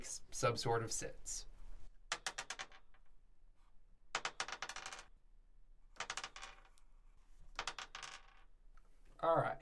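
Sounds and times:
speech: 0:00.1 - 0:01.5
dice rattling and clattering onto a hard surface: 0:02.1 - 0:03.1, 0:04.1 - 0:05.2, 0:06.0 - 0:06.8, 0:07.4 - 0:08.5.

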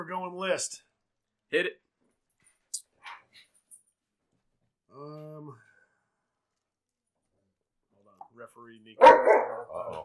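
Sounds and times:
speech: 0:00.0 - 0:00.9, 0:01.5 - 0:01.8, 0:04.9 - 0:05.6, 0:08.4 - 0:10.0
dogs barking: 0:09.0 - 0:10.0.

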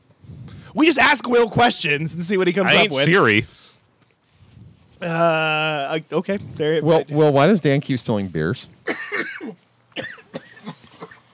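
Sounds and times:
speech: 0:00.7 - 0:03.6, 0:05.0 - 0:10.8
person coughing: 0:08.8 - 0:11.3.

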